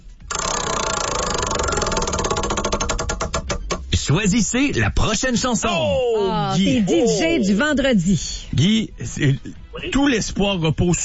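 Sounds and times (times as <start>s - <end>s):
prize wheel spinning during a game: 0.3s - 3.5s
speech: 4.1s - 11.0s.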